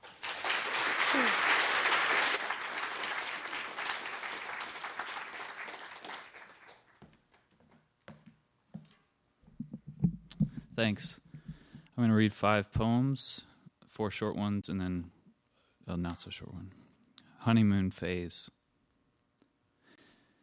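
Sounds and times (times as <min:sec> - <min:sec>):
audience applauding a reader: 0:00.0 - 0:07.1
speech: 0:10.8 - 0:11.2, 0:12.0 - 0:15.2, 0:15.9 - 0:16.8, 0:17.4 - 0:18.6.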